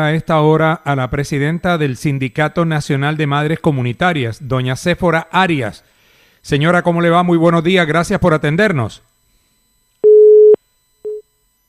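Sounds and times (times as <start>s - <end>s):
speech: 0.0s - 9.1s
telephone busy tone after a call drops: 10.0s - 11.6s.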